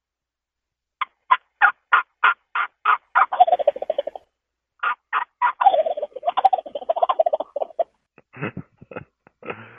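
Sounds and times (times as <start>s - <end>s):
imitation of a turkey hen yelp series: 1.0s - 7.9s.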